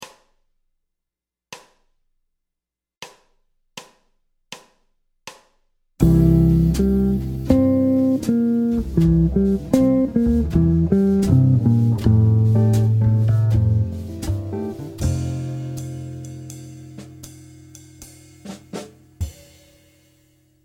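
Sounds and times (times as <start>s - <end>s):
jazz guitar playing chords: 6.0s - 19.1s.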